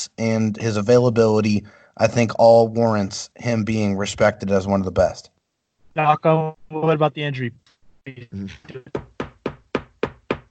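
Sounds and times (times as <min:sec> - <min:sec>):
speech: 0:00.1 - 0:05.3, 0:06.0 - 0:09.1
loud hollow knocks on wood: 0:08.9 - 0:10.4.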